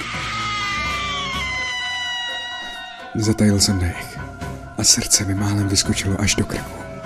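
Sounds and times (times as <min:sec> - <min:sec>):
high-pitched scream: 0:00.0 - 0:05.2
speech: 0:03.2 - 0:04.2, 0:04.8 - 0:06.9.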